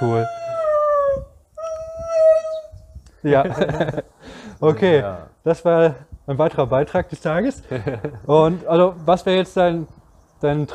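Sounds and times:
speech: 0.0s - 0.5s, 3.2s - 10.7s
dog howling in reply to barking: 0.0s - 2.8s
faint low bursts: 0.8s - 10.7s
laughter: 3.4s - 4.9s, 7.6s - 8.6s.

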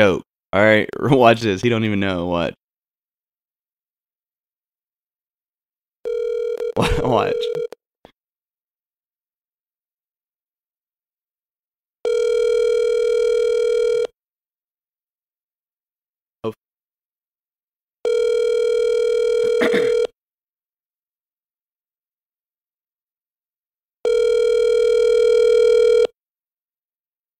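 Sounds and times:
speech: 0.0s - 2.6s, 6.8s - 7.8s, 16.4s - 16.6s
outgoing phone call ringing tone: 6.0s - 7.8s, 12.0s - 14.2s, 18.0s - 20.2s, 24.0s - 26.2s.

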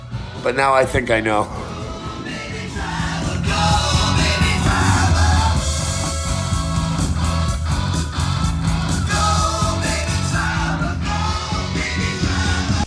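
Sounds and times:
1970s rock from a 1976 vinyl record with full band: 0.0s - 12.8s
distorted guitars: 0.0s - 12.8s
speech: 0.4s - 1.7s
steady pounding drum hits: 3.8s - 7.8s.

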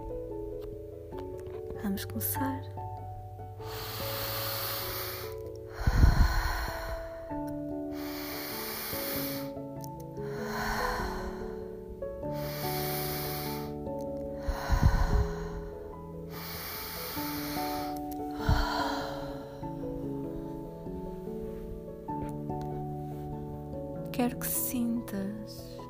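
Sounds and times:
gentle music: 0.0s - 25.8s
speech: 1.8s - 2.8s
deep breaths drawn in through the nose: 3.5s - 23.8s.

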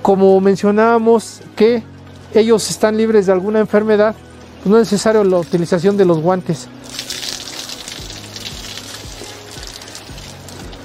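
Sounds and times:
speech: 0.1s - 7.1s
water running from a hand-washing tap: 4.8s - 10.8s.

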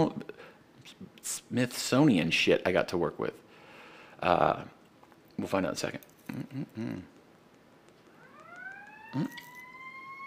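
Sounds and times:
speech: 0.9s - 3.4s, 4.2s - 4.8s, 5.4s - 7.1s, 9.2s - 9.4s
fire station siren winding up into a steady wail: 8.2s - 10.2s.

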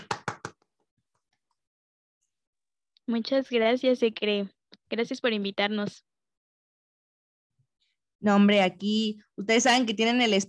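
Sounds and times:
hand claps applauding guests: 0.0s - 0.7s
speech: 3.1s - 6.1s, 8.2s - 10.4s.

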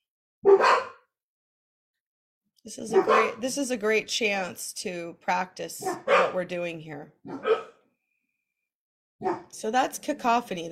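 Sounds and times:
dog barking: 0.4s - 1.1s, 2.9s - 3.4s, 5.8s - 6.4s, 7.3s - 7.8s, 9.2s - 9.5s
speech: 2.6s - 7.7s, 9.2s - 10.7s.

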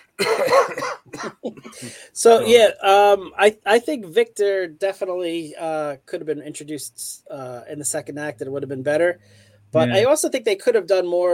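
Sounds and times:
person coughing: 0.2s - 2.5s
speech: 0.2s - 11.3s.

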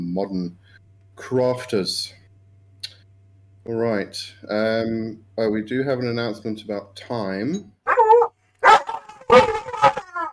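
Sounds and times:
speech: 0.2s - 2.2s, 3.7s - 7.8s
small dog barking at the mailman: 7.9s - 10.3s.

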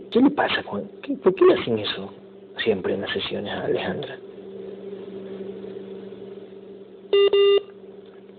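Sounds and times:
steady low hum on a phone line: 0.0s - 8.3s
speech: 0.1s - 4.3s, 7.1s - 7.6s
phone line disconnection beeps as a call is cut off: 7.2s - 7.7s.

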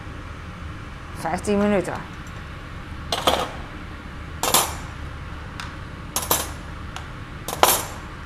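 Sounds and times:
speech: 1.2s - 2.2s
metal cutlery dropped into a dishwasher cutlery basket: 3.1s - 3.7s, 4.4s - 5.0s, 6.2s - 6.6s, 7.5s - 8.1s.

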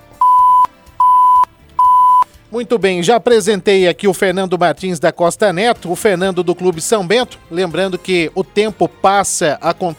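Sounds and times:
electronic countdown alert beeps signalling 10 seconds left in a live interview: 0.2s - 2.3s
speech: 2.5s - 9.9s.

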